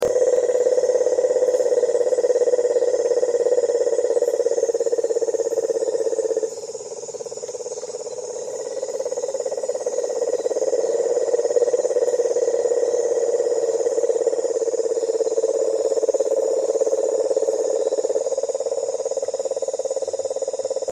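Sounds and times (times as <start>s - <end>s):
Rhinella marina: 0.0s - 20.9s.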